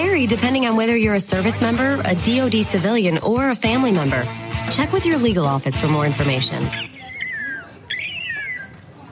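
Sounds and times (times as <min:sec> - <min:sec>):
speech: 0:00.2 - 0:06.9
bird calling in clear descending whistled notes: 0:06.7 - 0:08.8.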